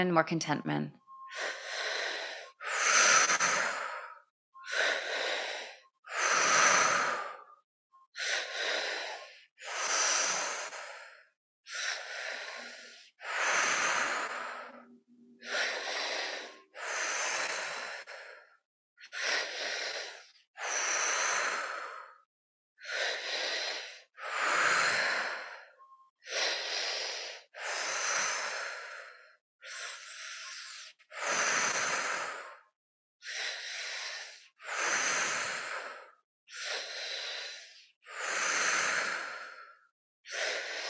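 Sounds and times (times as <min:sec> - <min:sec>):
speech: 0:00.0 - 0:01.6
slow deep breathing during a guided breathing exercise: 0:01.2 - 0:40.8.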